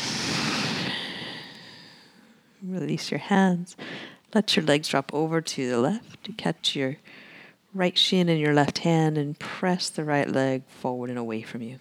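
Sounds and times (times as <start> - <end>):
long full exhale during a guided stretching session: 0.0 - 2.3
speech: 2.6 - 11.7.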